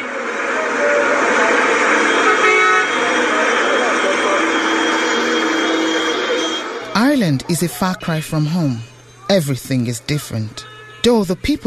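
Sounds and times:
busy chaotic street traffic in Lagos Nigeria: 0:00.0 - 0:11.6
indistinct voices: 0:00.0 - 0:11.6
car horn blast: 0:01.8 - 0:06.9, 0:10.4 - 0:11.3
speech: 0:07.5 - 0:11.6.

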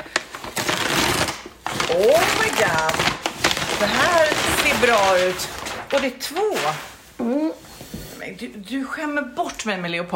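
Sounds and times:
hand rummaging in a paper bag: 0:00.0 - 0:07.1
speech: 0:01.9 - 0:03.2, 0:03.8 - 0:07.6, 0:08.3 - 0:10.1.

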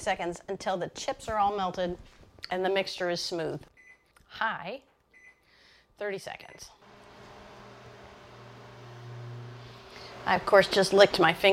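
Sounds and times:
speech: 0:00.0 - 0:03.7, 0:04.3 - 0:04.9, 0:06.0 - 0:06.8, 0:10.2 - 0:11.5
microwave oven humming: 0:06.8 - 0:10.7
microwave oven fan whirring: 0:06.8 - 0:11.5.

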